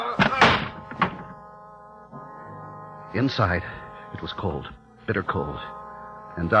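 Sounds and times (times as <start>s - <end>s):
heavy meat storage room door heaved open: 0.1s - 1.3s
speech: 3.1s - 5.8s, 6.4s - 6.5s.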